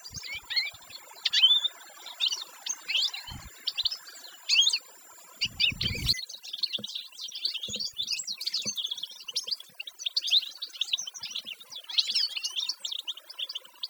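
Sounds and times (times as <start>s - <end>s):
canary singing fast high chirps and trills: 0.0s - 13.8s.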